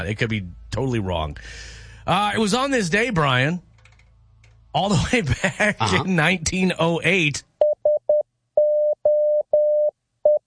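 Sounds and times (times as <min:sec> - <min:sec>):
speech: 0:00.0 - 0:03.7, 0:04.7 - 0:07.5
Morse code SOS distress signal beeps in a mid-pitched tone: 0:07.6 - 0:10.4.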